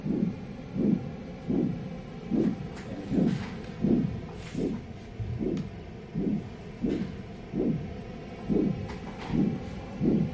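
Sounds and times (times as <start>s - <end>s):
faint hum: 0.0s - 10.3s
human heartbeat played back in a gallery soundscape: 0.0s - 10.3s.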